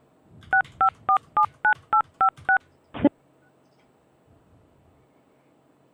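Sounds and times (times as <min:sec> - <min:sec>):
telephone keypad DTMF tones dialing an extension at an automated phone menu: 0:00.5 - 0:02.6.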